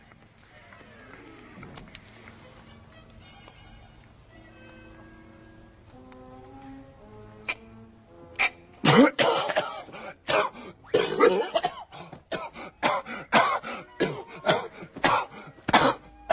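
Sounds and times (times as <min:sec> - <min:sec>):
man clearing throat: 0:08.8 - 0:16.3
man coughing hard with harsh hacking bursts: 0:08.8 - 0:16.3.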